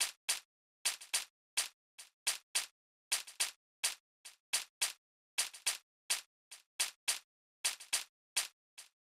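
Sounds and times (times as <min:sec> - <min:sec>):
Afrobeats shaker drum loop at 106 BPM: 0:00.0 - 0:09.0.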